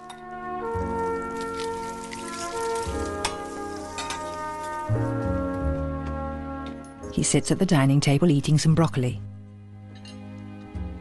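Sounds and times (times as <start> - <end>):
eggs frying in a pan: 0.8 - 5.4
speech: 7.2 - 9.3.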